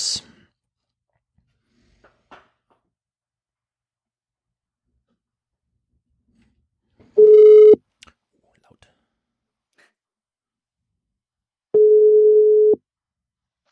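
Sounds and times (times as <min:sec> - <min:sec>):
outgoing phone call ringback tone beeps: 0:07.2 - 0:07.8, 0:11.8 - 0:12.8.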